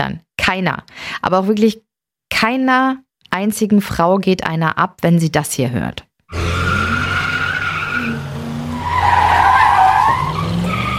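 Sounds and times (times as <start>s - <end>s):
speech: 0.0s - 6.1s
car engine roar: 6.3s - 10.9s
car tires spinning and squealing under hard acceleration at a traffic light: 6.3s - 10.9s.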